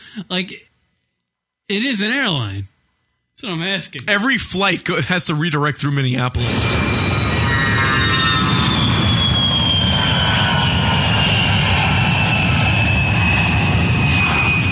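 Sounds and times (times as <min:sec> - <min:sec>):
speech: 0:00.1 - 0:00.7, 0:01.7 - 0:02.7, 0:03.4 - 0:07.3
propeller airplane engine droning: 0:06.4 - 0:14.7.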